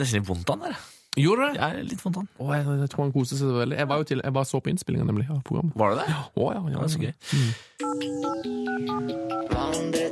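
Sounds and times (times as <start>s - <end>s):
speech: 0.0s - 10.1s
telephone ringing with a bright melodic electronic ringtone: 7.8s - 10.0s.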